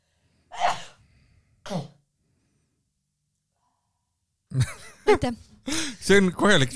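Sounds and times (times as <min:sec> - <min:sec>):
person sneezing: 0:00.5 - 0:01.0, 0:01.6 - 0:02.0
speech: 0:04.6 - 0:06.7.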